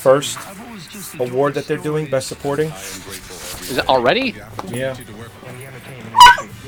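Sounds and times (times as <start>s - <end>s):
speech: 0.0s - 5.4s
female pet dog giving a high yelping bark: 6.0s - 6.6s.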